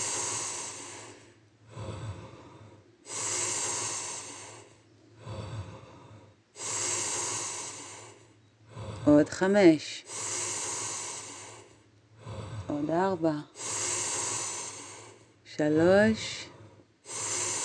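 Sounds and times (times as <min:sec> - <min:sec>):
deep full breathing in and out: 0:00.0 - 0:17.6
speech: 0:09.0 - 0:10.3, 0:12.9 - 0:13.6, 0:15.6 - 0:16.5.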